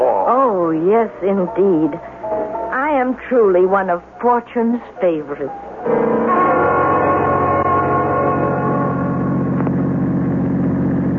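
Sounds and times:
speech: 0:00.6 - 0:02.1, 0:03.0 - 0:06.2
car engine droning hum while driving and pulling off the road at night: 0:06.2 - 0:11.1.

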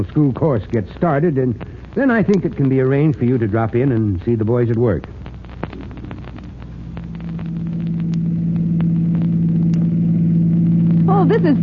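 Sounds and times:
speech: 0:00.0 - 0:05.2, 0:11.3 - 0:11.6
car engine humming heard from inside the vehicle: 0:05.2 - 0:11.6.

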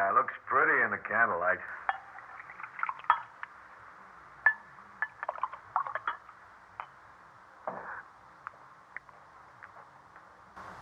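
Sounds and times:
speech: 0:00.2 - 0:01.9
glassware clinking: 0:01.7 - 0:03.5, 0:04.5 - 0:06.9
wine gurgling and splashing as poured into a glass: 0:01.7 - 0:03.5, 0:04.5 - 0:06.3.

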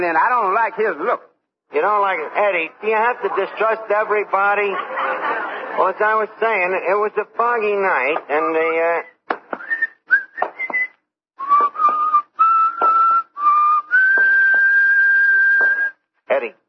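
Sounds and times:
speech: 0:00.0 - 0:09.1
laughter: 0:01.8 - 0:07.1
man whistling a song: 0:09.6 - 0:16.0.

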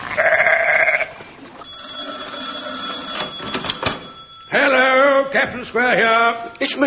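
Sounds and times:
sheep bleating: 0:00.0 - 0:01.2
thin steady high-pitched ringing tone: 0:01.6 - 0:05.4
speech: 0:04.5 - 0:06.8.

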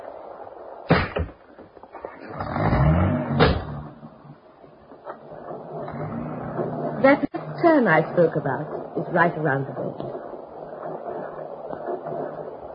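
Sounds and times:
car engine starting and revving up, pulling away: 0:02.0 - 0:04.4, 0:05.7 - 0:08.2
speech: 0:07.0 - 0:10.3.

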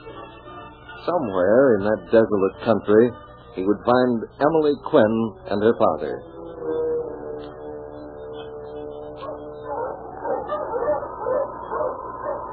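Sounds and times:
speech: 0:01.0 - 0:06.3
pack of husky sled dogs yipping and barking pulling a sled through snow: 0:06.2 - 0:12.5.

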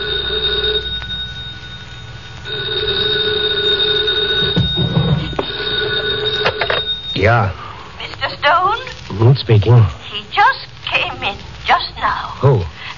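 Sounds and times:
telephone bell ringing: 0:00.0 - 0:07.5
speech: 0:07.2 - 0:07.6, 0:09.2 - 0:12.7.

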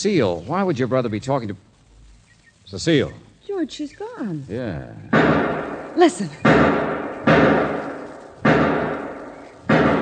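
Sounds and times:
speech: 0:00.0 - 0:01.7, 0:02.7 - 0:07.5
gunshots from a shed: 0:05.1 - 0:10.0.

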